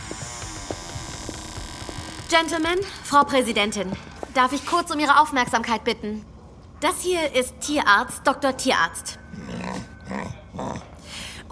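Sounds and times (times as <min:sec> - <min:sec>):
speech: 0:02.3 - 0:09.5
dog growling with rough rumbling bursts: 0:09.3 - 0:11.1.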